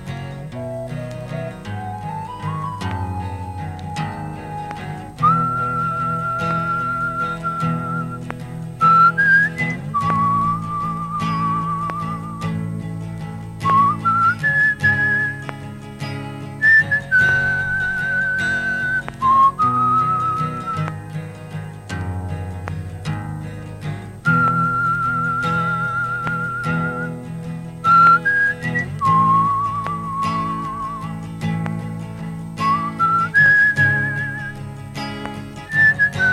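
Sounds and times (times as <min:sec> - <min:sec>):
soft sustained musical backing: 0:00.0 - 0:36.3
old man whistling a slow tune: 0:00.5 - 0:12.7, 0:13.6 - 0:15.6, 0:16.6 - 0:21.1, 0:24.2 - 0:31.6, 0:32.6 - 0:34.7, 0:35.6 - 0:36.3.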